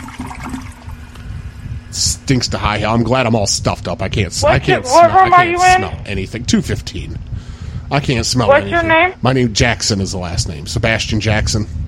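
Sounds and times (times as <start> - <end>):
toilet flushing: 0.0 - 1.0
faint low hum: 0.8 - 11.8
speech: 1.9 - 7.3, 7.9 - 11.8.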